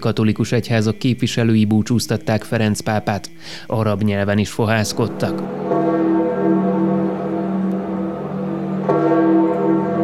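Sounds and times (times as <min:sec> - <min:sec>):
speech: 0:00.0 - 0:05.8
church bells ringing a peal in Rome after a papal funeral: 0:04.7 - 0:10.0.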